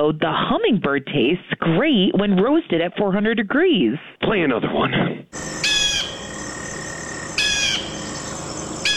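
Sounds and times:
speech: 0.0 - 5.7
bald eagle chittering calls: 5.4 - 8.9.

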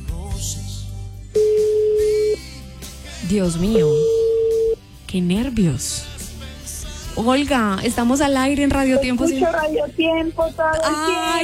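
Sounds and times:
speech: 0.4 - 0.6, 3.3 - 4.2, 5.1 - 6.1, 7.2 - 11.4
telephone line tone on a call placed from a radio studio: 1.4 - 2.4, 3.7 - 4.8.

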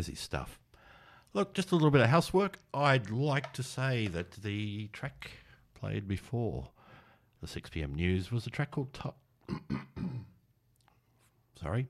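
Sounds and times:
speech: 0.0 - 0.6, 1.3 - 6.8, 7.4 - 9.9, 11.6 - 11.8
person clearing throat: 9.4 - 10.4.

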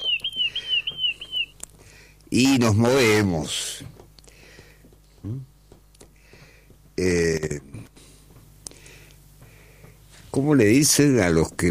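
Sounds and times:
small bird chirping in high warbling notes: 0.0 - 1.6
speech: 2.3 - 3.9, 5.2 - 5.5, 7.0 - 7.8, 10.4 - 11.7.

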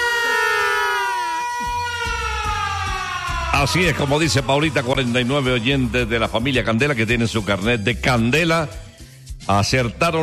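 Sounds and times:
siren wailing: 0.0 - 6.5
speech: 3.6 - 8.8, 9.5 - 10.2.

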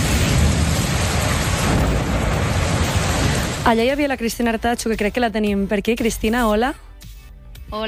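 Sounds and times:
heavy rain pouring down: 0.0 - 4.3
deep rumble of thunder: 0.0 - 5.4
speech: 3.7 - 6.9.

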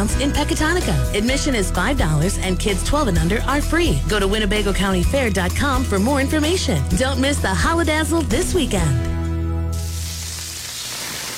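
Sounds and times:
speech: 0.0 - 9.1
beef smash burgers with cheese sizzling: 9.7 - 11.3.

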